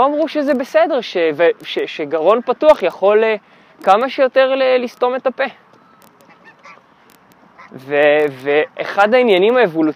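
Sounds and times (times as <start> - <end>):
speech: 0.0 - 5.6, 7.7 - 9.9
steady outdoor noise: 0.0 - 9.9
geese honking: 5.2 - 8.8
sharp higher squawks of geese: 5.7 - 7.9.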